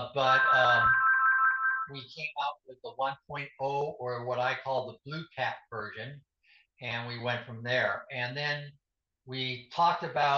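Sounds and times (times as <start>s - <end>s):
speech: 0.0s - 1.0s, 1.9s - 10.3s
mobile phone ringtone electronic tone: 0.2s - 1.9s.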